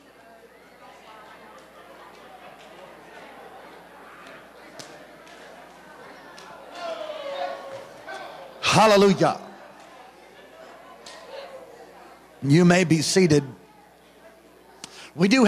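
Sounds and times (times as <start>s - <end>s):
crowd of people mingling and murmuring: 0.0s - 15.4s
speech: 8.8s - 9.4s, 12.4s - 13.6s, 15.2s - 15.4s.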